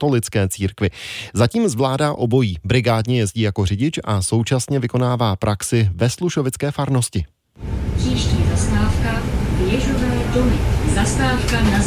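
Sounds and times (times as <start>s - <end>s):
speech: 0.0s - 11.8s
low rumble of the engine inside a moving city bus: 7.6s - 11.8s
recorded stop announcement over the loudspeaker of a city bus: 7.6s - 11.8s.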